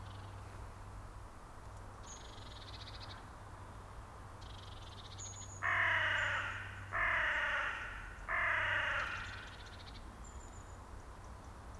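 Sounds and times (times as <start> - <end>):
Corvus corone carrion crow giving harsh hoarse caws: 5.6 - 9.6.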